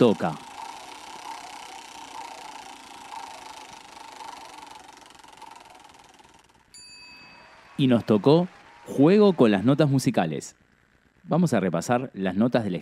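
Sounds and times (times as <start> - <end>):
speech: 0.0 - 0.4, 7.8 - 10.6, 11.2 - 12.8
prize wheel of fortune spinning: 0.0 - 11.6
clear ringing tone: 6.7 - 8.4.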